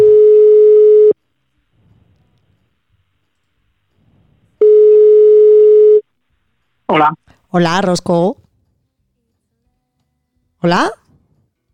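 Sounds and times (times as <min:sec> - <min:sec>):
telephone ringback tone from an outgoing call: 0:00.0 - 0:01.2, 0:04.6 - 0:06.0
faint noise: 0:00.0 - 0:11.7
speech: 0:06.9 - 0:08.4, 0:10.6 - 0:11.0.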